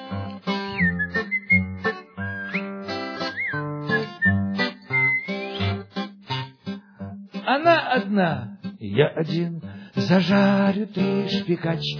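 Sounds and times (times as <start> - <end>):
artistic whistling of a lively melody with sliding pitch bends: 0.5 - 6.6
speech: 7.6 - 11.9.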